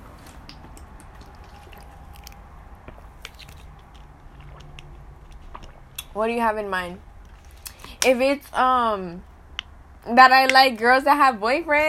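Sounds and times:
person sipping water: 0.1 - 6.2, 7.2 - 8.0
swallowing: 0.3 - 6.2, 7.0 - 8.1
speech: 6.2 - 7.1, 8.0 - 9.3, 10.0 - 11.8.

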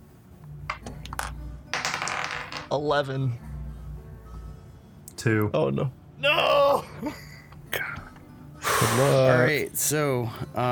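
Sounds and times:
dice rolled by two players clattering across a hard table: 0.7 - 2.7
speech: 2.7 - 3.5, 5.2 - 7.3, 8.9 - 10.7.

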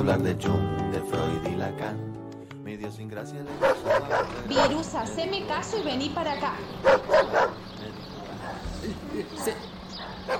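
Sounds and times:
speech: 0.0 - 8.1, 8.8 - 10.3
female dog barking sharply: 3.5 - 4.9, 6.8 - 7.6, 8.2 - 8.8, 9.4 - 10.3.

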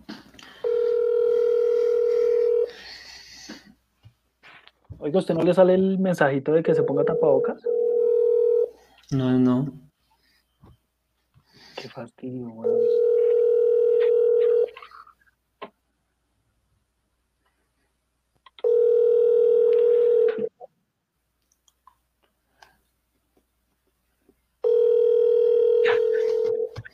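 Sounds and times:
ringback tone of an unanswered telephone call: 0.6 - 2.8, 6.7 - 8.8, 12.6 - 14.8, 18.6 - 20.5, 24.6 - 26.7
speech: 5.0 - 7.8, 9.1 - 9.8, 12.0 - 13.1.

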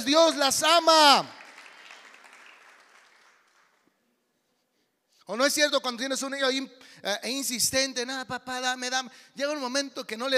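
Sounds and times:
speech: 0.0 - 1.4, 5.3 - 10.3
audience applauding: 1.2 - 3.9.

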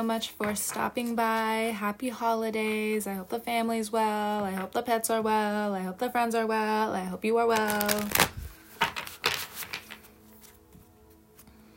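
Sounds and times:
speech: 0.0 - 8.3
deck of tarot cards shuffling: 7.5 - 11.5.

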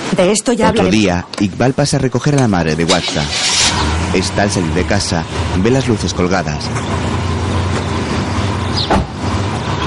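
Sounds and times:
speech: 0.2 - 3.5, 4.1 - 7.0
car engine idling with a steady low hum: 2.8 - 9.7.

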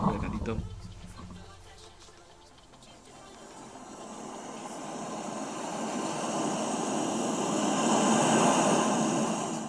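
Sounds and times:
speech: 0.5 - 0.8
ocean waves ambience played from small smart speaker: 2.8 - 9.6.

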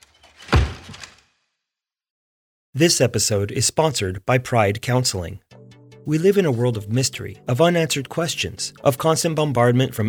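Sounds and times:
door slamming shut: 0.0 - 1.3
speech: 2.8 - 5.5, 6.1 - 10.0.

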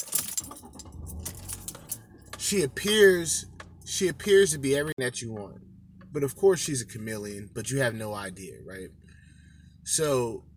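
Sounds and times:
keys jangling as they are taken out and handled: 0.0 - 2.4
speech: 2.5 - 9.0, 9.8 - 10.5.

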